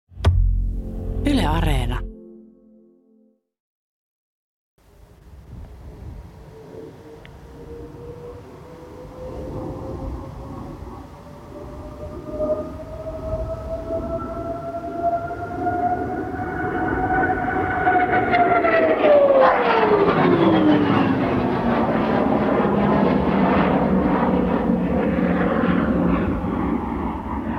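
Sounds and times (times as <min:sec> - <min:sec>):
speech: 0:01.5 - 0:02.1
small propeller plane taking off and climbing fast: 0:05.8 - 0:27.5.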